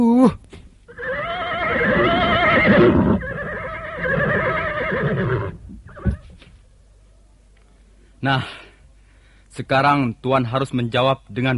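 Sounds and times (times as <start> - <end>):
speech: 0.0 - 0.5, 8.2 - 8.6, 9.6 - 11.5
horse whinnying: 0.9 - 6.3
hoof thud: 5.6 - 6.6.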